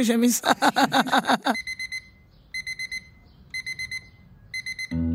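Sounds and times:
speech: 0.0s - 1.7s
laughter: 0.3s - 1.6s
electronic alarm clock beeping in high-pitched bursts: 1.5s - 5.0s.

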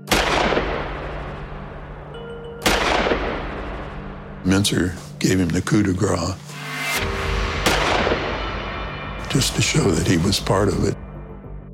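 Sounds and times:
loud booming gunshots with long rumbling echo: 0.0s - 2.0s, 2.6s - 4.1s, 7.5s - 10.2s
speech: 4.4s - 6.5s, 9.4s - 11.0s.

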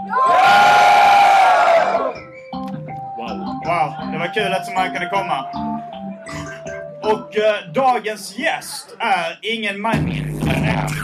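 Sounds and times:
live audience roaring and cheering: 0.0s - 2.2s
speech: 0.1s - 0.4s, 3.8s - 5.8s, 7.1s - 11.0s.

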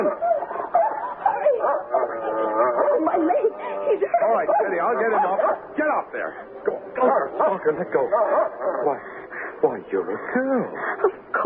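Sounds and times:
laughter: 0.0s - 5.5s, 7.0s - 11.4s
dog barking and yipping excitedly: 0.0s - 5.7s, 8.0s - 9.0s
speech: 4.4s - 11.2s.

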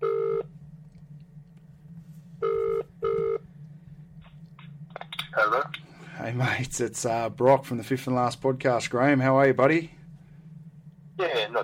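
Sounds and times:
phone line ringback tone on an outgoing call: 0.0s - 0.5s, 2.4s - 3.4s
faint low hum: 0.0s - 11.6s
speech: 5.4s - 10.0s.

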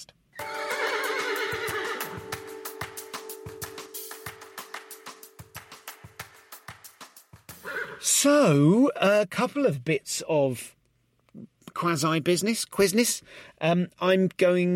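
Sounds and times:
horse whinnying: 0.4s - 2.2s, 7.6s - 8.1s
speech: 8.0s - 10.8s, 11.8s - 14.7s.

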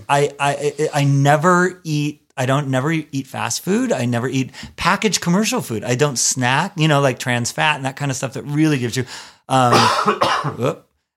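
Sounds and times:
speech: 0.1s - 10.9s
man clearing his throat: 9.7s - 10.7s
man coughing: 9.7s - 10.7s.

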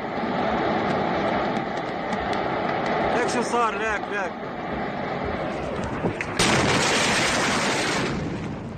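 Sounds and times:
rough rumbling background: 0.0s - 8.7s
speech: 3.3s - 4.9s
massive explosion at a port: 6.0s - 8.7s.

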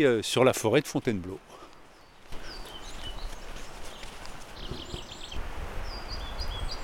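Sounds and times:
speech: 0.0s - 1.6s
steady outdoor hiss: 0.0s - 6.8s
pied flycatcher singing in a forest: 1.9s - 6.8s.

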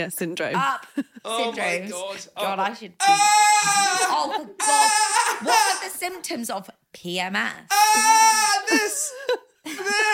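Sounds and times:
speech: 0.0s - 10.1s
person bleating like a lamb or cow: 3.0s - 5.9s, 7.7s - 9.1s
laughter: 8.0s - 10.1s.

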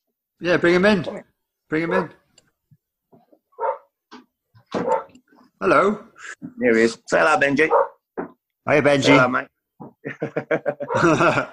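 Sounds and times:
speech: 0.4s - 2.2s, 5.6s - 7.9s, 8.7s - 11.5s
dog barking in short irregular bursts: 1.8s - 2.2s, 3.6s - 3.9s, 4.8s - 5.2s, 7.6s - 8.0s, 9.0s - 9.4s, 10.8s - 11.3s
laughter: 10.0s - 11.5s.

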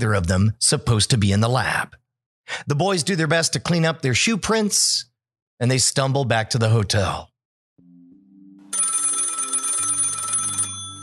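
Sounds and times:
speech: 0.0s - 7.3s
old-style telephone bell ringing: 8.6s - 11.0s.

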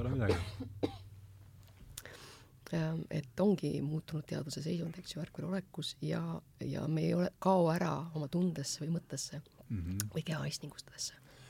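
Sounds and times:
speech: 0.0s - 0.9s, 2.7s - 11.2s
low steady hum: 0.0s - 11.4s
person coughing: 0.2s - 1.1s.

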